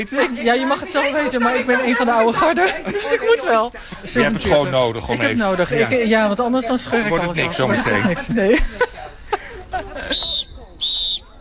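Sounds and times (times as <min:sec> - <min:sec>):
laughter: 0:00.0 - 0:06.2, 0:06.9 - 0:10.8
speech: 0:00.0 - 0:08.9
referee whistle blasts at a recreational korfball tournament: 0:10.1 - 0:11.3.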